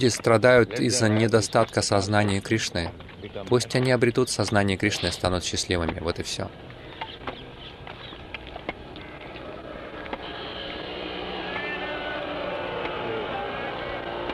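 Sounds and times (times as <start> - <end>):
speech: 0.0 - 6.7
busy outdoor noise: 0.0 - 14.3
motorcycle passing: 8.1 - 14.3
people shouting: 9.4 - 14.3.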